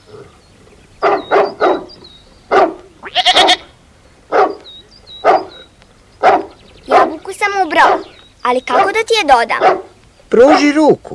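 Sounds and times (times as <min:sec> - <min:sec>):
faint high chirping: 0:00.1 - 0:10.7
angry dog barking loudly: 0:01.0 - 0:03.6, 0:04.3 - 0:04.6, 0:05.2 - 0:05.6, 0:06.2 - 0:10.8
speech: 0:07.8 - 0:11.1.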